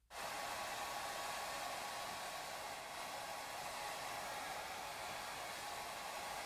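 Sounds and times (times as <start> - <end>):
hair dryer blowing: 0.1 - 6.4.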